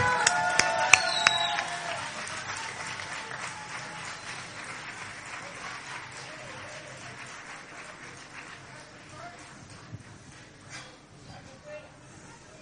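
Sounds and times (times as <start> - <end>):
people shouting: 0.0 - 2.0
crowd applauding: 0.0 - 9.6
sharp whistles: 0.9 - 1.7.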